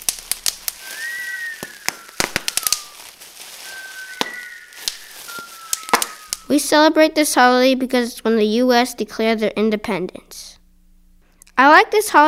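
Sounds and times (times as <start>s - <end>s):
fireworks crackling bangs: 0.0s - 6.5s
fireworks whistling: 0.0s - 6.6s
speech: 6.5s - 10.5s, 11.6s - 12.2s.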